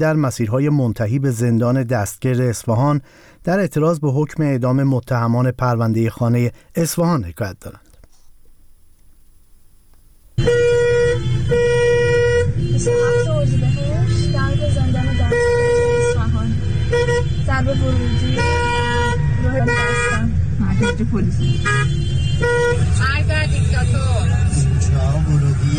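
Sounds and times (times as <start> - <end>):
speech: 0.0 - 7.8, 21.0 - 22.2
dense chorus of car horns honking in heavy traffic in front of a prison in Isfahan: 10.4 - 25.3
low rumble of idling heavy traffic in Isfahan: 10.4 - 25.7.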